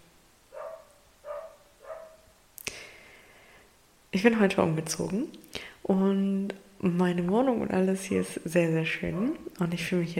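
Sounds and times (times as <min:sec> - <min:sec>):
dog barking in an apartment with thin walls: 0:00.5 - 0:02.3
speech: 0:04.1 - 0:10.1.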